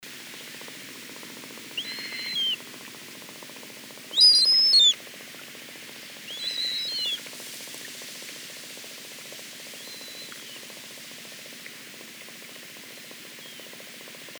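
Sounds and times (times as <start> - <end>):
Caspian tern Hydroprogne caspia calling: 1.6 - 2.7, 4.1 - 5.0, 6.2 - 7.3.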